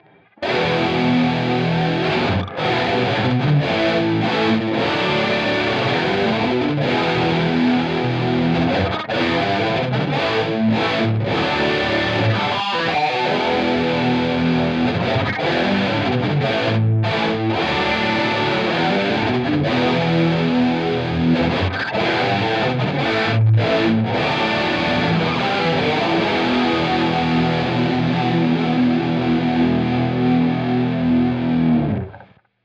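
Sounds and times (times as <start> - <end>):
direct-input electric guitar recording through amp simulator with micro pitch: 0.0 - 32.4.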